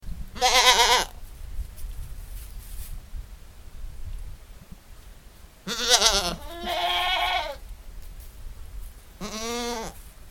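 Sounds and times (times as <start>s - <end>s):
goat bleating: 0.4s - 1.1s, 5.7s - 7.6s, 9.2s - 10.0s.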